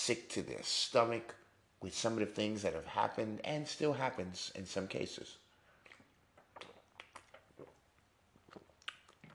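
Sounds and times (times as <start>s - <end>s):
speech: 0.0s - 5.4s
mouth clicks: 5.8s - 9.3s
sipping water: 5.8s - 9.3s.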